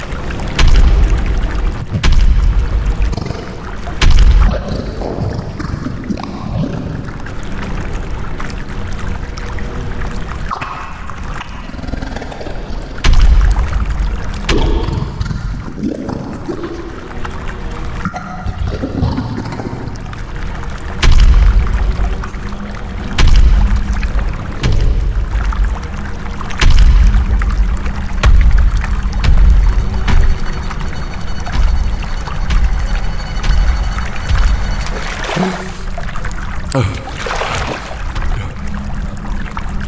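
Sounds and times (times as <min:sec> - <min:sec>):
deep thuds and surges as bodies move through water: 0:00.0 - 0:05.9, 0:13.0 - 0:15.7, 0:21.0 - 0:39.0
water sloshing as people wade into a chest-deep pool: 0:00.0 - 0:11.8, 0:12.8 - 0:39.8.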